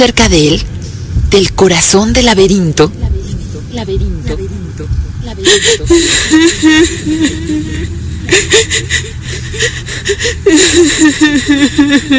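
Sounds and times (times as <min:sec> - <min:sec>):
speech: 0:00.0 - 0:00.7, 0:01.3 - 0:03.1, 0:03.7 - 0:12.1
woman sobbing: 0:05.3 - 0:12.1.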